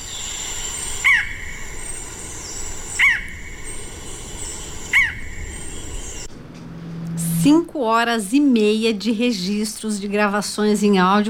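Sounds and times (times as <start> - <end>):
steady hiss of forest insects: 0.0 - 6.3
barred forest-falcon giving sharp yelping barks: 0.8 - 6.2
speech: 7.4 - 11.2.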